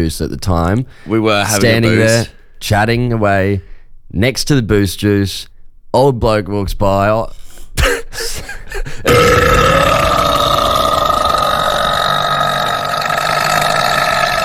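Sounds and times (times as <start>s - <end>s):
speech: 0.0s - 9.8s
old man burping loudly at a juice bar: 9.0s - 14.4s.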